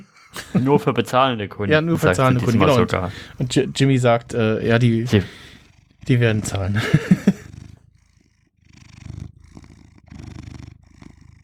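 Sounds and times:
laughter: 0.0 - 5.5, 6.1 - 7.5
cat purring: 0.0 - 11.4
speech: 0.5 - 5.4, 6.0 - 7.1.

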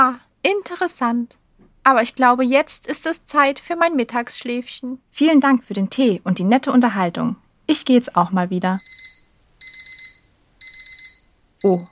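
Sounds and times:
speech: 0.0 - 8.9, 11.6 - 11.9
alarm clock ringing with shrill beeps: 8.8 - 11.9.

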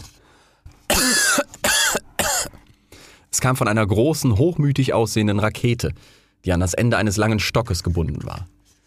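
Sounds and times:
sharp dry coughs: 0.9 - 2.6
speech: 3.4 - 8.6.

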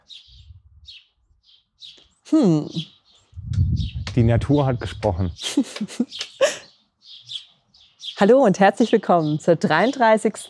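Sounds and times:
bird chirping with bright high twittering calls: 0.0 - 10.4
speech: 2.3 - 2.9, 4.2 - 6.3, 8.2 - 10.4
low rumbling background: 3.4 - 5.4
laughter: 5.1 - 6.6.

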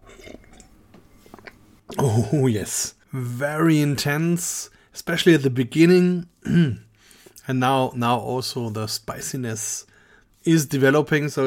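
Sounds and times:
first sip of a drink: 0.0 - 2.1
speech: 2.1 - 6.8, 7.5 - 11.4.

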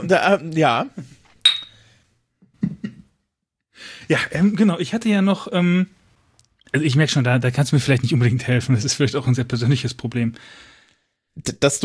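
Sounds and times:
speech: 0.0 - 1.0, 3.8 - 6.0, 6.7 - 10.7, 11.4 - 11.8
two wine glasses clinking in a toast: 1.4 - 1.9.

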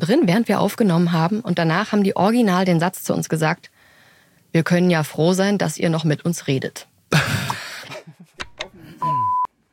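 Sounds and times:
speech: 0.1 - 3.8, 4.5 - 7.3
short electronic alarm beep: 9.0 - 9.5.

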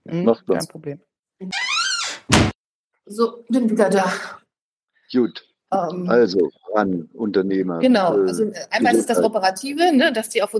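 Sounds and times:
speech: 0.1 - 1.7, 3.1 - 4.4, 5.1 - 10.5
door hinge creaking: 1.4 - 2.6
door thudding shut: 2.0 - 2.6.

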